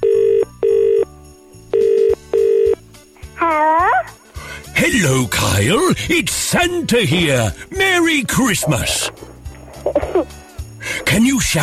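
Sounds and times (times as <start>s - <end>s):
phone line ringing in double-ring bursts: 0.0s - 1.1s, 1.8s - 2.8s
speech: 4.9s - 10.4s, 11.1s - 11.6s.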